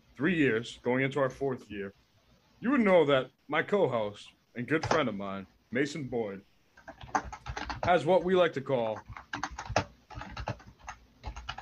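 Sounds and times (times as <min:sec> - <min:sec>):
speech: 0:00.2 - 0:02.0, 0:02.6 - 0:07.2, 0:07.9 - 0:09.2
typing on a computer keyboard: 0:06.8 - 0:08.1, 0:08.9 - 0:11.6.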